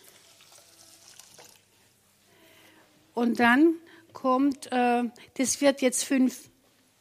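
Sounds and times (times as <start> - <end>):
hot water pouring into a pot: 0.0 - 1.8
speech: 3.2 - 6.5.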